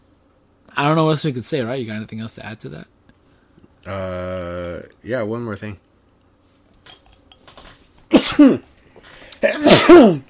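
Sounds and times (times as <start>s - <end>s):
speech: 0.8s - 3.0s, 3.8s - 5.9s, 8.4s - 8.7s, 9.9s - 10.2s
person sneezing in a dusty garage: 8.1s - 8.7s, 9.3s - 10.2s.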